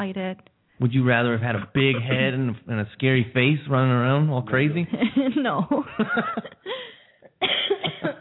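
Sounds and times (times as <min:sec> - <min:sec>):
speech: 0:00.0 - 0:08.1
laughter: 0:01.3 - 0:02.6, 0:04.5 - 0:06.9
raspy coughing: 0:07.2 - 0:08.1.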